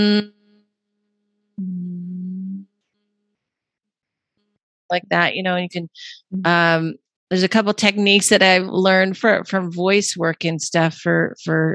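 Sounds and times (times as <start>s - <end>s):
person humming a steady low note as a breathing exercise: 0.0s - 0.3s, 1.6s - 2.6s
speech: 0.0s - 0.4s, 4.9s - 11.7s.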